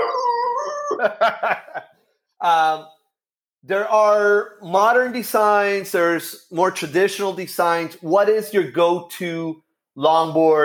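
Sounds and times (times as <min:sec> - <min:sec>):
dog howling: 0:00.0 - 0:01.1
speech: 0:01.0 - 0:01.8, 0:02.4 - 0:03.0, 0:03.6 - 0:10.6.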